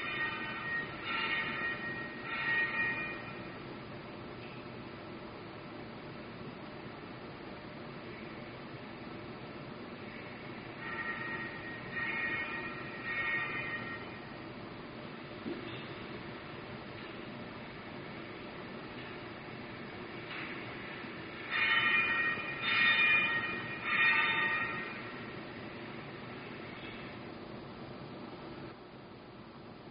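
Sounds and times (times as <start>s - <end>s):
recorded church bells ringing in overlapping peals: 0.0s - 3.5s, 10.8s - 14.2s, 21.4s - 25.3s.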